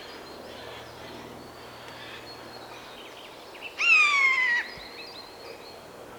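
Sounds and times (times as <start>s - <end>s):
Common Buzzard calling: 3.8s - 4.7s.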